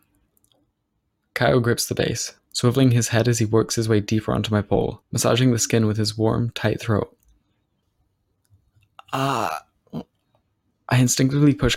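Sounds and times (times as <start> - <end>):
speech: 1.4 - 7.2, 9.1 - 10.1, 10.9 - 11.7
man suppressing a gag: 9.0 - 9.6.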